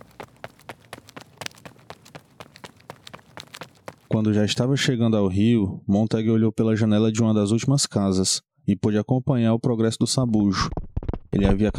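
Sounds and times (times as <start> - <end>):
running footsteps slapping the ground: 0.0 - 4.7
speech: 4.1 - 11.7.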